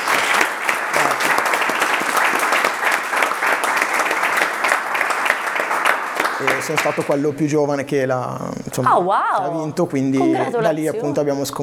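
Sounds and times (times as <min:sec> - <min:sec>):
laughter: 0:00.0 - 0:05.2, 0:06.2 - 0:11.6
audience applause: 0:00.0 - 0:07.3
speech: 0:06.4 - 0:11.6.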